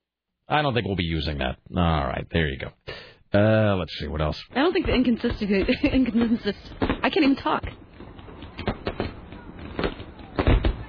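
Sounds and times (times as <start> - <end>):
speech: 0.5 - 7.8
fireworks sound effect with sharp popping bursts: 4.6 - 10.8.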